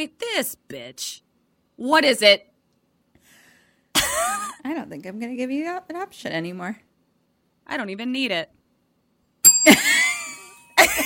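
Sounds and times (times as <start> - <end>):
speech: 0.0 - 1.2, 1.8 - 2.5, 4.3 - 6.8, 7.7 - 8.6
bright bell ringing: 9.4 - 11.0.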